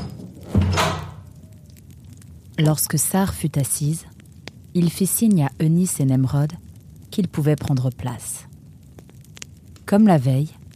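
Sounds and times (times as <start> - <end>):
door being shut: 0.0 - 1.2
speech: 2.6 - 4.1, 4.8 - 6.6, 7.2 - 8.4, 9.9 - 10.6.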